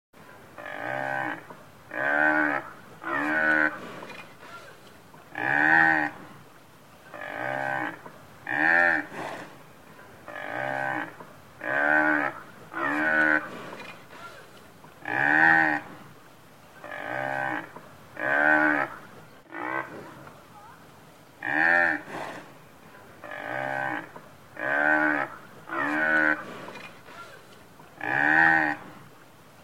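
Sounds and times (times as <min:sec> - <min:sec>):
buffalo: 0:00.2 - 0:29.3.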